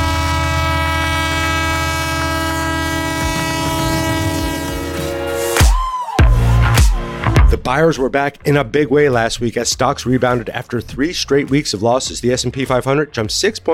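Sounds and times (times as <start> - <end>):
train horn chord blaring: 0.0 - 7.3
speech: 7.7 - 13.7.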